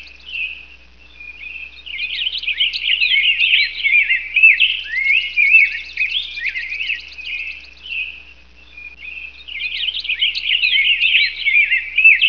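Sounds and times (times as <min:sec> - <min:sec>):
bird chatter with high twittering and trill: 0:00.0 - 0:12.2.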